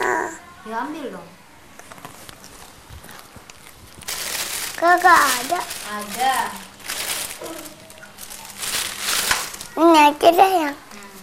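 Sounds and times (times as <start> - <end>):
speech: 0.7 - 1.4, 4.8 - 6.7, 9.8 - 10.8
thin plastic bag rustling as hands rummage: 2.0 - 10.4.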